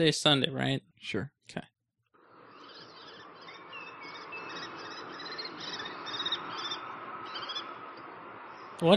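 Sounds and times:
speech: 0.0 - 1.7, 8.8 - 8.9
birds chirping and trilling: 2.2 - 8.9.

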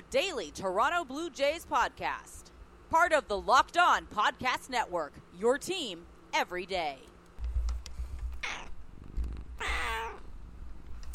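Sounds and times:
speech: 0.1 - 7.1
cat meowing: 8.4 - 8.8, 9.6 - 10.3.

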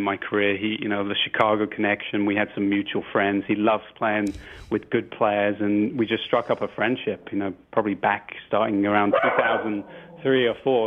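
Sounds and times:
speech: 0.0 - 10.8
dog barking: 9.1 - 10.4.

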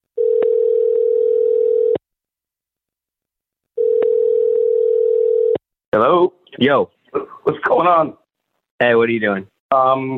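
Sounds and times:
phone line ringback tone: 0.2 - 2.0, 3.8 - 5.6
speech: 6.6 - 7.0, 7.8 - 8.2, 8.8 - 10.1.

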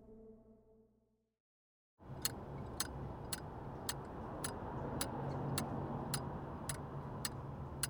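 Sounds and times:
metronome ticking: 2.1 - 7.8.

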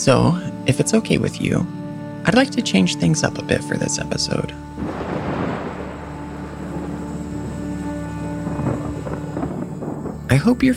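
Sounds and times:
speech: 0.0 - 5.1, 10.4 - 10.7
thunderstorm rumbling outside: 4.8 - 10.7.

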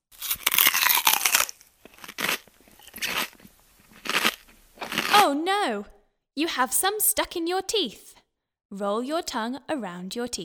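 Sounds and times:
chewing a mouthful of sweets: 0.1 - 5.4
speech: 5.2 - 10.4.

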